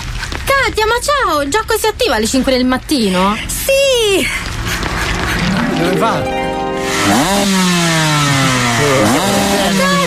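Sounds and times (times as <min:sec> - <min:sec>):
speech: 0:00.5 - 0:04.5, 0:05.8 - 0:06.4, 0:07.1 - 0:08.0
dirt bike engine revving during wheelie: 0:05.1 - 0:10.0.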